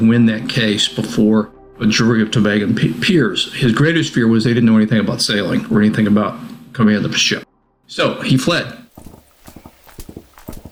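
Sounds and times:
speech: 0.0s - 8.8s
horse hooves galloping: 8.8s - 10.6s.

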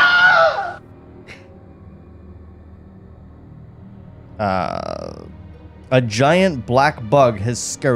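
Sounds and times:
stock movie-style male scream sound effect: 0.0s - 0.8s
speech: 4.4s - 7.9s.

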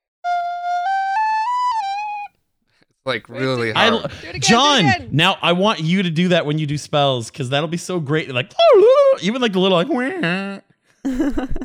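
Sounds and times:
person whistling a short tune: 0.2s - 2.3s
speech: 3.0s - 10.6s, 11.2s - 11.6s
laughter: 3.2s - 6.0s, 11.1s - 11.6s.

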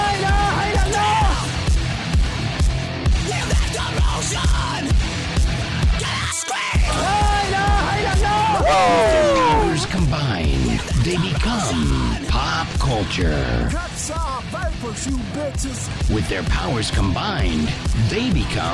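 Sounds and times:
raw screaming and yelling voices: 0.0s - 1.6s, 6.1s - 10.1s
dense driving music with a steady pounding beat: 0.0s - 18.7s
speech: 14.8s - 18.7s.

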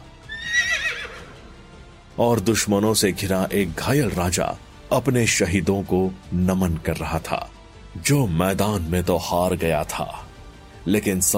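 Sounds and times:
horse neighing: 0.2s - 1.5s
speech: 2.2s - 10.2s, 10.8s - 11.3s.

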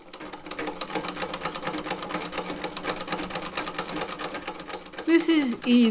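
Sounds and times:
sewing machine running with clattering needle and motor whir: 0.0s - 5.9s
speech: 5.1s - 5.9s.

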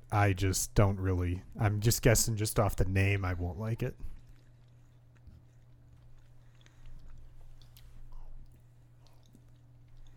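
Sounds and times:
steady low hum: 0.0s - 10.1s
speech: 0.1s - 4.1s
chewing chocolate: 3.2s - 10.1s.

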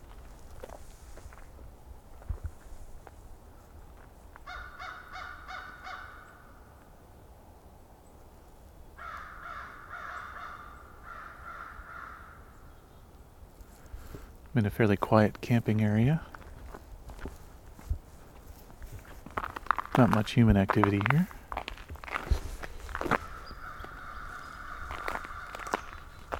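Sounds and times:
American crows cawing in a camping area in Valens Conservation Area, Southern Ontario: 4.4s - 6.6s, 9.0s - 12.6s, 22.8s - 26.3s
speech: 14.6s - 16.3s, 20.0s - 21.4s.

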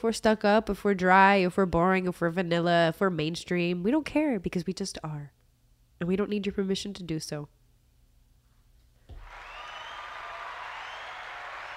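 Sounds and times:
speech: 0.0s - 5.4s, 6.0s - 7.6s
crowd applauding and cheering: 9.1s - 11.7s.

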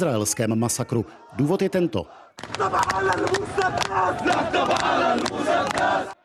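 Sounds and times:
large agitated protest crowd shouting and chanting: 0.0s - 6.2s
speech: 0.0s - 6.2s.

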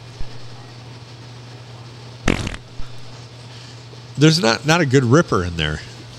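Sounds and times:
steady low electrical hum: 0.0s - 6.1s
loud raspy fart noise: 2.3s - 3.1s
soft thumps: 2.3s - 3.2s
speech: 4.2s - 5.9s.

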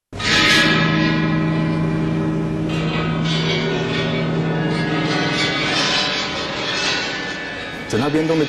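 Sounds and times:
large ancient Chinese bronze chime bells struck in an orchestra: 0.2s - 8.4s.

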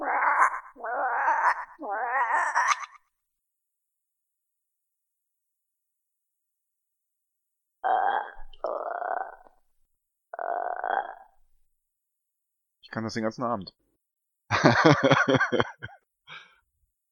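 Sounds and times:
voice imitating croaking frogs: 0.0s - 3.1s, 7.8s - 9.6s, 10.3s - 11.4s
speech: 12.9s - 13.9s, 14.6s - 16.5s
laughter: 14.5s - 16.0s.

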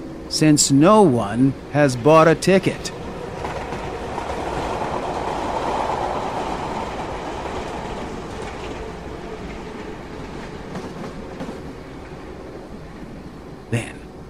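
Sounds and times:
train barreling through a station: 0.0s - 14.2s
speech: 0.3s - 3.0s.

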